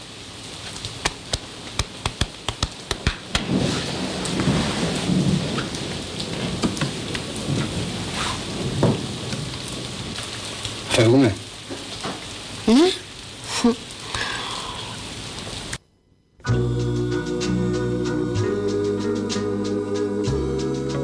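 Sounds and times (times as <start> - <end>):
steady rain hissing: 0.0 - 15.8, 16.5 - 21.0
sharp drips and taps of rain: 1.0 - 3.5
low rumble of thunder: 3.4 - 11.0.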